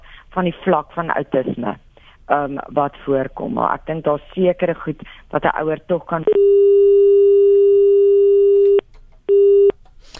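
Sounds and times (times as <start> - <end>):
speech: 0.4 - 6.8
telephone busy tone from an unanswered call: 6.3 - 9.7.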